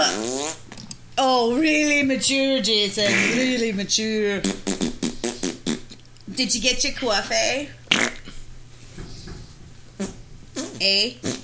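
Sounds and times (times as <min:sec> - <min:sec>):
fart: 0:00.0 - 0:00.8, 0:03.0 - 0:03.6, 0:04.4 - 0:06.0, 0:07.9 - 0:08.4, 0:10.0 - 0:11.4
speech: 0:01.4 - 0:04.7, 0:06.4 - 0:08.1, 0:10.8 - 0:11.4.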